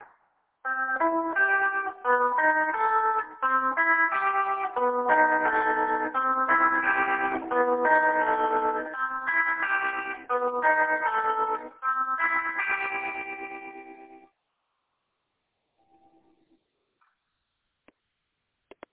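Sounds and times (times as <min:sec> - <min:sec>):
arpeggiated chords: 0:00.7 - 0:14.3.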